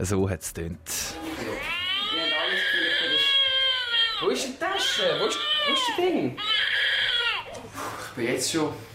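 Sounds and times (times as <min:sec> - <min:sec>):
speech: 0:00.0 - 0:01.4, 0:04.2 - 0:06.8, 0:07.7 - 0:08.9
baby simulator doll crying: 0:01.2 - 0:07.7.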